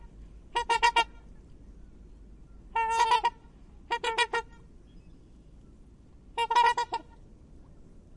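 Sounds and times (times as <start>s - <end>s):
Black swan Cygnus atratus calling with nasal trumpeting: 0.0s - 1.3s, 2.7s - 4.7s, 6.4s - 7.2s.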